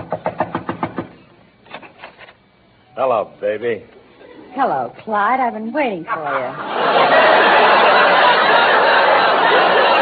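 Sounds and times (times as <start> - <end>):
knocking on a door: 0.0 - 1.2
speech: 3.0 - 8.2
laughter: 6.1 - 9.9.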